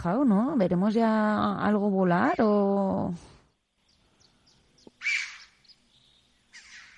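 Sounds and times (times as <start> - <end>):
speech: 0.0 - 3.3
chough calling in a clear open area: 5.0 - 5.7.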